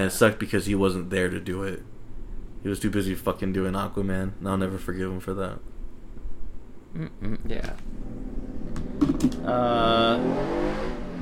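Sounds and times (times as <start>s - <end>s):
speech: 0.0s - 1.9s, 2.6s - 5.7s, 6.9s - 8.2s, 9.0s - 10.8s
loud motorcycle revving outside: 7.9s - 11.2s.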